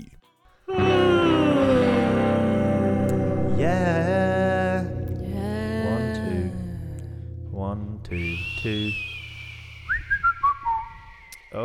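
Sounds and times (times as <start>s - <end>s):
person whistling a thin wavering high tone: 0.7s - 3.3s, 8.1s - 11.6s
low voiced humming: 0.7s - 8.5s
speech: 8.6s - 9.1s.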